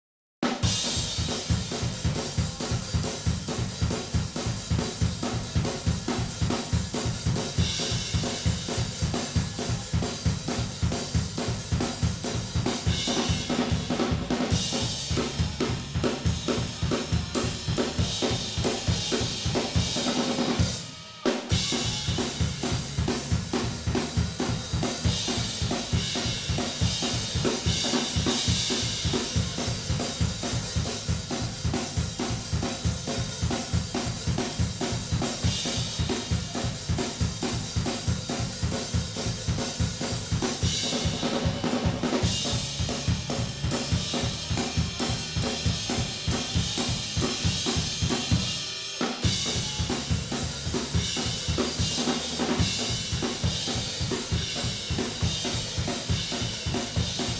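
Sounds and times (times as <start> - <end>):
cymbals: 0.6 - 57.3.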